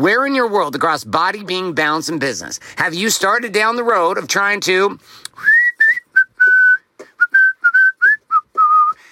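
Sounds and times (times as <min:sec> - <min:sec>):
speech: 0:00.0 - 0:05.5
person whistling a bright tune: 0:05.4 - 0:09.1.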